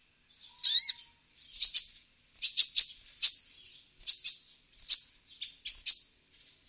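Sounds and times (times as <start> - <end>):
female Van Hasselt's sunbird giving sharp high tweets: 0.4 - 6.0.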